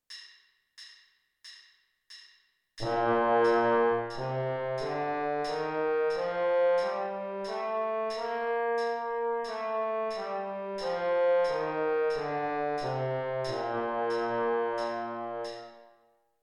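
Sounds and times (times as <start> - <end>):
baritone trombone playing a B flat major scale: 2.8 - 15.8.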